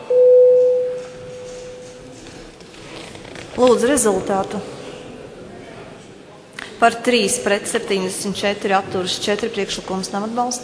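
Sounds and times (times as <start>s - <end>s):
parliament voting bell electronic tone: 0.0s - 2.0s
speech: 3.6s - 4.8s, 6.8s - 10.6s.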